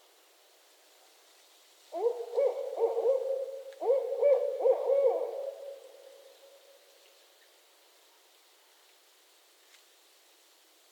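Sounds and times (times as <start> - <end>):
background hiss: 0.0 - 10.8
Barred owl hooting in northern Michigan during mating season: 1.9 - 6.5.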